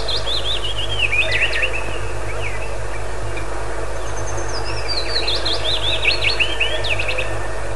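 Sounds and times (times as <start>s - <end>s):
steady low hum: 0.0s - 7.7s
willow warbler song: 0.0s - 7.7s.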